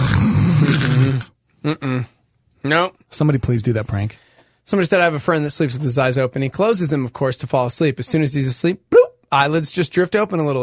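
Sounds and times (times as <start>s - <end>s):
person imitating snoring with voiced snorts: 0.0s - 2.2s
speech: 1.6s - 10.6s.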